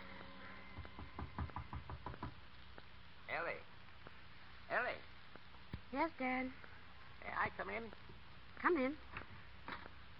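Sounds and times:
quiet room hum: 0:00.0 - 0:10.1
knocking on a door: 0:00.7 - 0:02.4
speech: 0:03.4 - 0:03.7, 0:04.7 - 0:05.1, 0:05.9 - 0:06.7, 0:07.4 - 0:08.0, 0:08.6 - 0:09.1.

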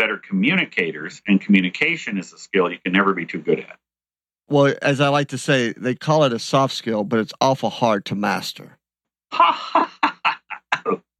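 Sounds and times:
speech: 0:00.1 - 0:03.8, 0:04.5 - 0:10.2, 0:10.8 - 0:11.1
person coughing: 0:10.5 - 0:11.1.

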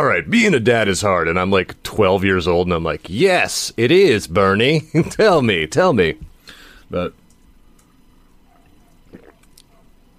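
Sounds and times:
speech: 0:00.0 - 0:06.3, 0:06.9 - 0:07.2
low hum: 0:00.0 - 0:10.1
gulp of water being swallowed: 0:09.1 - 0:09.5.

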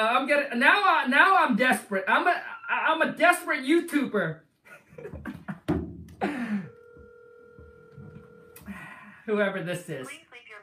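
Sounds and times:
speech: 0:00.0 - 0:05.4, 0:09.3 - 0:10.3
laughter: 0:04.7 - 0:06.7
electronic telephone ring tone: 0:06.5 - 0:08.6.

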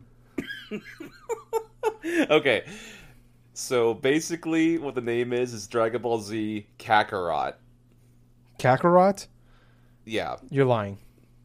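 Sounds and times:
wheezy coughing after hard laughter: 0:00.3 - 0:01.3
person laughing hard: 0:00.4 - 0:02.8
speech: 0:00.7 - 0:01.4, 0:02.0 - 0:03.0, 0:03.6 - 0:07.6, 0:08.6 - 0:09.3, 0:10.1 - 0:11.0.

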